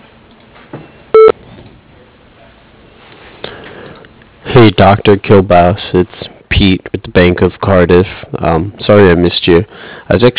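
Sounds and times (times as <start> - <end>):
answering machine beep: 1.1 - 1.4
speech: 4.5 - 10.3.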